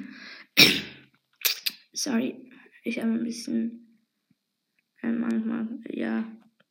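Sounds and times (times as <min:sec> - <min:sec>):
person coughing: 0:00.6 - 0:01.6
speech: 0:02.0 - 0:03.8, 0:05.0 - 0:06.4.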